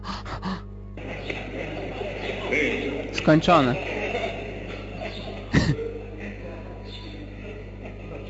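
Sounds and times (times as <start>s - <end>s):
quick forceful gasping breaths: 0.0s - 0.7s
longer sustained rush of breath: 0.0s - 0.8s
laughter: 1.0s - 8.2s
speech: 2.5s - 3.9s.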